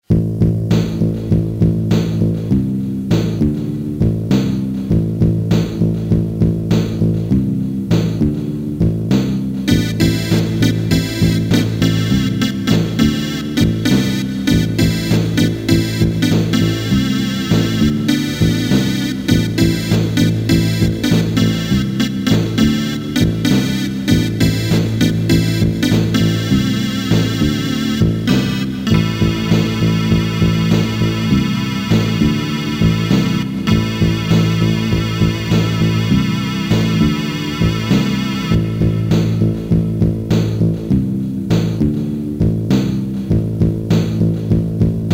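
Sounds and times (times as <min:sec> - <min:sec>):
Casio SA-1 keyboard rock rhythm: 0:00.0 - 0:45.1.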